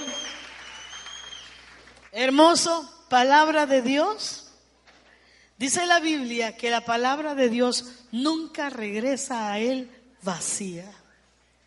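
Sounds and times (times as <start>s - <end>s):
crowd applauding: 0.0s - 2.1s
speech: 2.2s - 4.4s, 5.6s - 11.0s.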